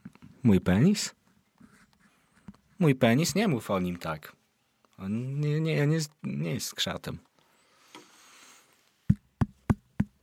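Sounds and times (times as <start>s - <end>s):
speech: 0.4s - 1.2s, 2.8s - 4.4s, 5.0s - 7.3s
sharp knocks on wood: 9.1s - 10.2s.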